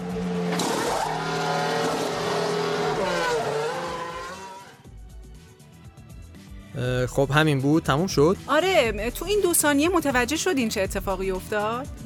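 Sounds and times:
car engine roaring with squealing, shifting tones: 0.0 - 4.9
speech: 7.0 - 12.0.

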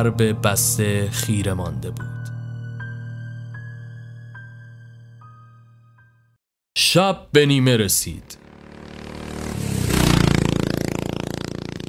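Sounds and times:
speech: 0.0 - 2.2, 6.9 - 8.4
motorcycle engine revving and pulling away: 8.3 - 11.8.

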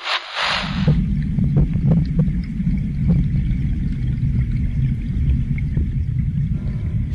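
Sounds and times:
brief hiss: 0.0 - 0.9
water bubbling and gurgling in an aquarium: 0.5 - 7.1.

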